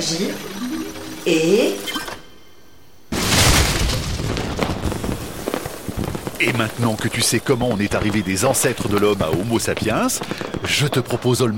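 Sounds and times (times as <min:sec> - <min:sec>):
speech: 0:00.0 - 0:00.6, 0:01.2 - 0:02.0, 0:06.4 - 0:11.5
seed cannon firing with a loud boom: 0:03.1 - 0:11.2
sustained crackling rumbling roar: 0:03.1 - 0:11.5.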